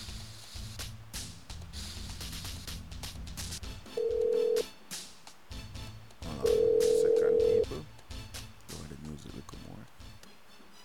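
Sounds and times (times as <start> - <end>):
phone dialing taps: 4.0 - 4.6, 6.5 - 7.6
phone ringing tone on the line: 4.0 - 4.7, 6.4 - 7.7.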